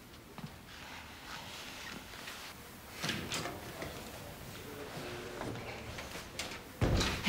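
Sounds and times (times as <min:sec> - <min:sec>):
door opened and shut as a doctor steps out: 0:03.0 - 0:03.9, 0:05.3 - 0:07.2
thud: 0:06.8 - 0:07.2.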